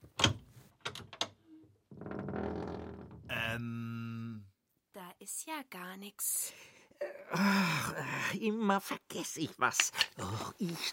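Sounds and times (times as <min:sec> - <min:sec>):
door hinges creaking and squealing: 0:00.0 - 0:03.5
speech: 0:03.6 - 0:03.8, 0:05.3 - 0:06.6, 0:07.3 - 0:10.9.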